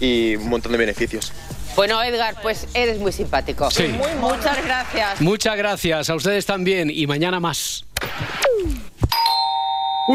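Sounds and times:
speech: 0.0 - 8.8
two-note ding-dong doorbell chime: 9.1 - 10.1.

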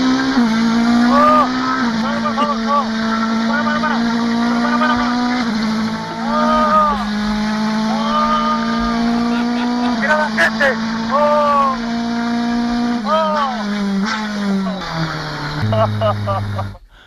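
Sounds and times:
race car roaring at high revs on a lap around a circuit: 0.0 - 17.0
laughter: 1.1 - 5.3, 7.8 - 10.6, 15.6 - 16.8.

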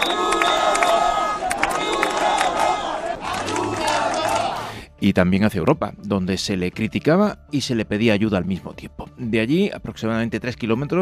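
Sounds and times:
whistles at a protest: 0.0 - 1.3
protest crowd chanting and shouting slogans: 0.0 - 4.7
speech: 5.0 - 11.0.

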